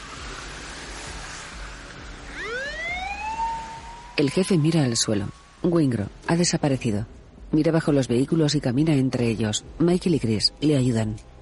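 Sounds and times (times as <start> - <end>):
police car siren wailing as the car drives along a road: 2.3 - 5.6
speech: 4.2 - 11.3.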